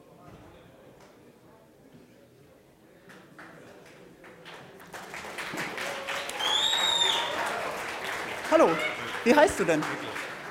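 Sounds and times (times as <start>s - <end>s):
audience applauding a volunteer: 3.4s - 10.4s
short high whistle: 6.4s - 7.3s
speech: 8.5s - 10.2s.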